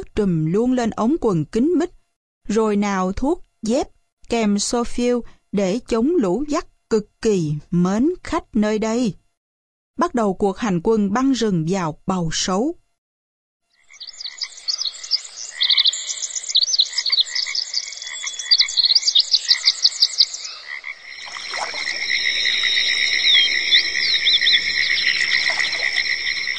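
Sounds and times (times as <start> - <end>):
speech: 0.2 - 9.2, 10.0 - 12.8
cicadas droning in a forest: 13.7 - 26.5
rapid repeated insect chirping calls: 13.9 - 26.5.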